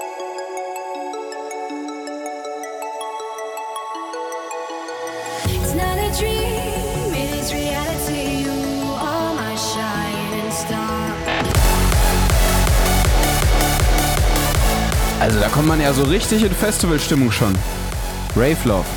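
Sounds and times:
pop-dance song with melodic vocals over layered synths: 5.2s - 18.9s
speech: 15.2s - 18.9s.

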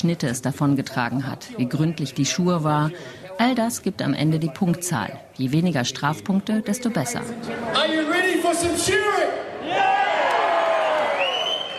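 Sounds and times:
speech: 0.0s - 9.8s
large stadium crowd cheering and whooping: 7.8s - 11.7s.

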